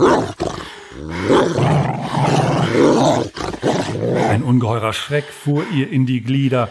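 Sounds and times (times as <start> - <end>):
dogs growling menacingly: 0.0 - 4.7
speech: 4.5 - 6.6.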